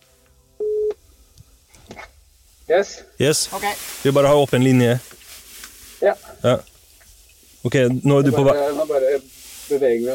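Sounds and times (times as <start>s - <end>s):
electronic phone call connecting tone: 0.6s - 1.0s
faint rustling: 1.0s - 10.1s
speech: 2.7s - 5.1s, 6.0s - 6.7s, 7.6s - 10.1s.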